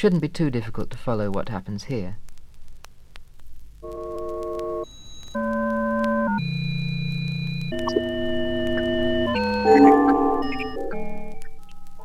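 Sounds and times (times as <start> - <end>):
speech: 0.0 - 2.2
pure electronic sine tones in stacked chords in experimental composition: 3.8 - 12.0.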